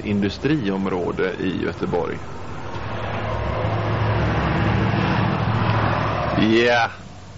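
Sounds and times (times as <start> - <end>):
speech: 0.0 - 3.1, 6.4 - 7.0
car driving past on a nearby road: 1.7 - 6.6.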